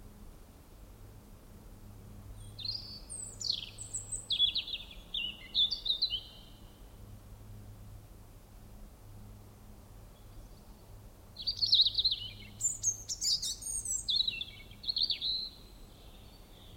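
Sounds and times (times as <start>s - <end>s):
European robin song, Erithacus rubecula: 2.4s - 6.7s, 11.4s - 16.7s.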